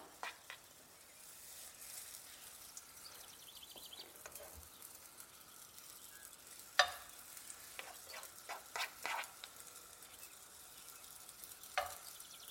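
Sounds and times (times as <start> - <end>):
scraping in a frying pan: 0.0 - 2.6, 4.1 - 4.9, 6.5 - 9.6
herb blini batter sizzling in oil in a large hot frying pan: 0.0 - 12.4.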